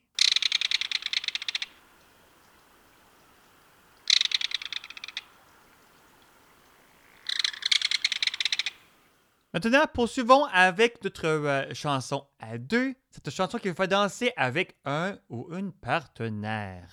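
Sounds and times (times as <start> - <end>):
rapid shrill high-pitched piping calls of a waterside bird, likely a kingfisher: 0.0 - 9.1
speech: 9.6 - 16.9.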